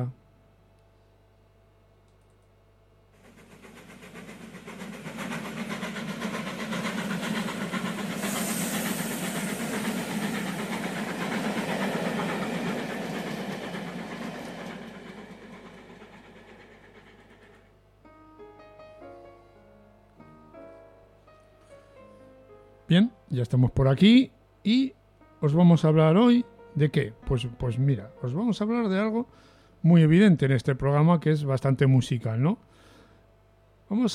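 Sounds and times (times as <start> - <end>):
speech: 0.0 - 0.2, 22.9 - 32.8, 33.9 - 34.1
train sound effect rumbling and hissing: 3.1 - 19.8.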